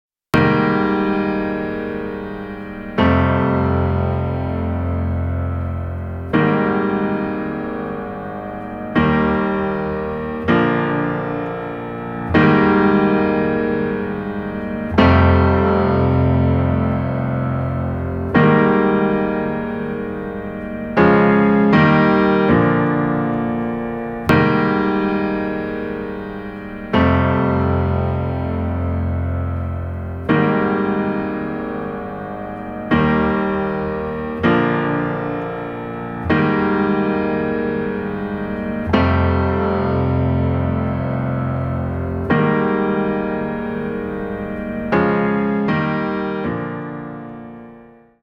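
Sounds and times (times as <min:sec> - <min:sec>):
piano recorded direct then through cassette: 0:00.3 - 0:48.2.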